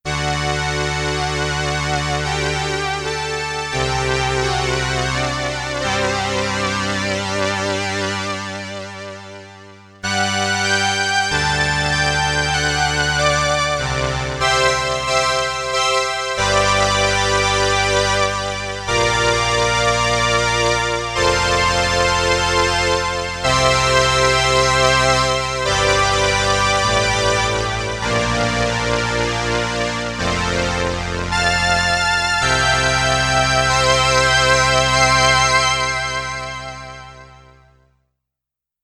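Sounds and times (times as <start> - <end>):
Roland RS-202 synthesized brass: 0.1 - 37.8.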